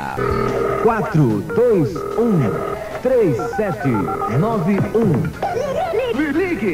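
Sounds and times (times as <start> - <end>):
speech: 0.0 - 5.6, 6.2 - 6.7
telephone ringing: 0.2 - 5.1
laughter: 3.1 - 6.7.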